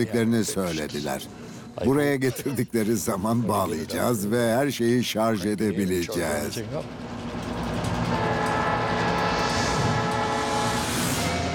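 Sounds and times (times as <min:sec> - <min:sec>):
speech: 0:00.0 - 0:07.1
train rumbling along the rails: 0:06.5 - 0:11.5.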